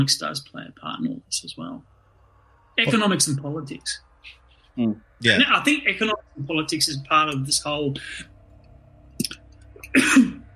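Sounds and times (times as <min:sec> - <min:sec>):
speech: 0:00.0 - 0:01.9, 0:02.8 - 0:08.3, 0:09.9 - 0:10.4
person coughing: 0:09.9 - 0:10.4.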